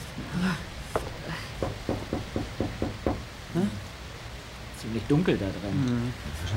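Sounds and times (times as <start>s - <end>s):
knocking on a door: 0.9s - 3.3s
speech: 4.9s - 6.5s.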